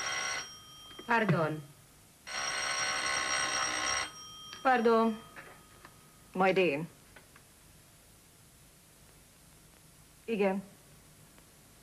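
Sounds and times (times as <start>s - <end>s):
telephone bell ringing: 0.0s - 1.6s, 2.3s - 6.0s
speech: 1.1s - 1.7s, 4.6s - 5.3s, 6.3s - 7.0s, 10.3s - 10.7s.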